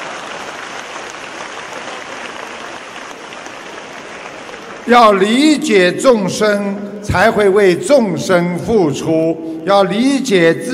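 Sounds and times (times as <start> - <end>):
audience applause: 0.0 - 5.3
speech: 4.9 - 10.7.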